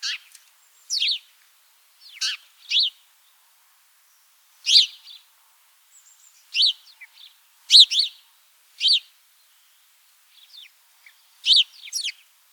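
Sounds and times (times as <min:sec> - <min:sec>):
house sparrow Passer domesticus chirping: 0:00.0 - 0:00.3, 0:02.1 - 0:03.0, 0:04.7 - 0:05.1, 0:07.7 - 0:08.1, 0:10.6 - 0:12.2.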